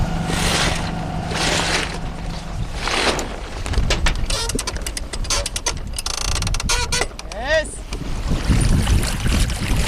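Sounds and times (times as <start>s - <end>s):
water sloshing around a sailboat moving through water: 0.0s - 5.9s, 7.8s - 9.8s
wind buffeting the microphone: 2.0s - 9.8s.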